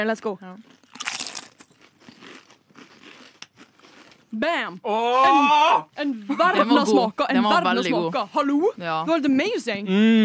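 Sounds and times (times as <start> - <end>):
speech: 0.0 - 0.8, 4.3 - 10.2
potato chips with umami seasoning crunching: 0.6 - 4.4.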